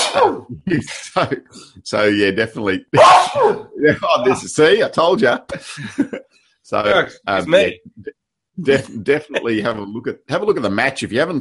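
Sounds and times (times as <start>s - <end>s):
sneeze: 0.0s - 0.5s, 3.0s - 3.7s
speech: 0.1s - 11.3s
laughter: 0.6s - 2.2s, 3.7s - 6.2s, 7.0s - 10.4s.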